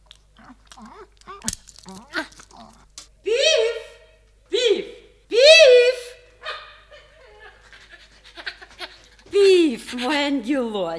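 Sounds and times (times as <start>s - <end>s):
dog crunching on bones: 0.0s - 3.2s
murmured vocal sounds: 0.3s - 3.0s
laughter: 0.8s - 10.9s
speech: 9.9s - 10.9s.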